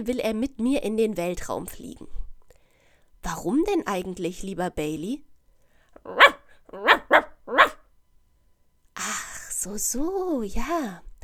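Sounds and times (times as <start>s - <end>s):
speech: 0.0s - 2.2s, 3.2s - 5.3s, 6.0s - 7.7s, 9.0s - 11.1s
dog barking sharply: 6.0s - 7.8s.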